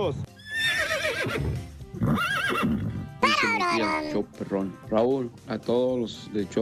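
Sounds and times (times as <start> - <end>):
speech: 0.0 - 0.4, 1.2 - 6.6
horse neighing: 0.3 - 3.2.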